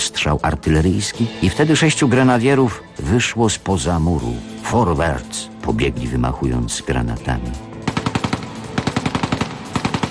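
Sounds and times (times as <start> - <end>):
speech: 0.2 - 7.7
Soviet machine gun firing from deep in the ruins of Stalingrad: 7.8 - 10.0.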